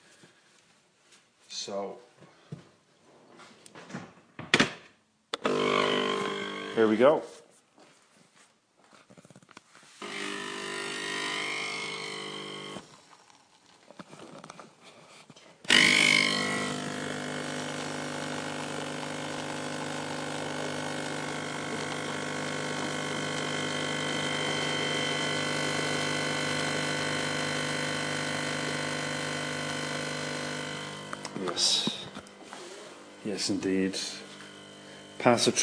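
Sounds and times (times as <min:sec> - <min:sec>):
speech: 0:01.6 - 0:02.3, 0:06.8 - 0:07.3, 0:33.5 - 0:34.2, 0:35.2 - 0:35.6
small espresso machine pump buzzing while pumping water through coffee: 0:05.4 - 0:07.0, 0:10.0 - 0:13.4, 0:15.7 - 0:35.6
small espresso machine click on starting: 0:15.8 - 0:27.9, 0:28.6 - 0:32.2.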